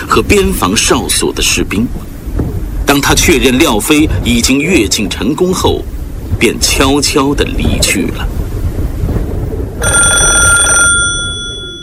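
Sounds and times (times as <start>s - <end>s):
low steady rumble: 0.0s - 11.8s
speech: 0.2s - 2.2s, 2.9s - 8.3s
telephone bell ringing urgently in a military officer's office: 9.8s - 11.8s.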